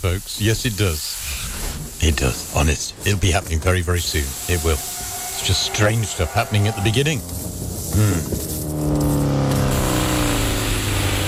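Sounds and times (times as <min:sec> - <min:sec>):
speech: 0:00.0 - 0:09.0
motorbike engine revving: 0:04.1 - 0:11.2.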